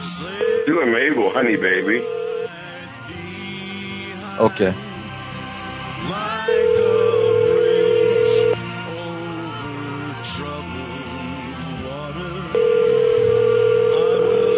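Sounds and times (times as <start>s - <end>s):
speech: 0.2s - 2.2s, 4.4s - 4.9s, 6.0s - 6.9s
telephone ringback tone: 0.4s - 2.6s, 6.5s - 8.6s, 12.6s - 14.5s.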